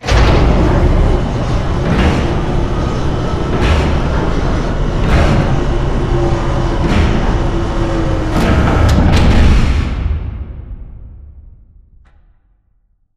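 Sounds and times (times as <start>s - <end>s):
blast shutter raising: 0.0s - 10.2s.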